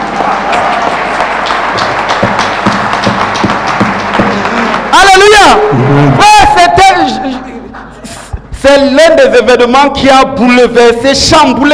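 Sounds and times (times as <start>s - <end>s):
crowd applauding: 0.0s - 6.2s
speech: 8.6s - 11.7s.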